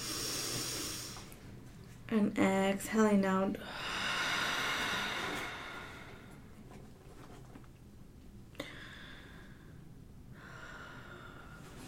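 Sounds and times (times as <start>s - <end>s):
inhale through the nose during a seated breathing exercise: 0.0s - 1.4s, 3.6s - 6.5s, 8.6s - 9.8s, 10.4s - 11.8s
speech: 2.1s - 3.9s.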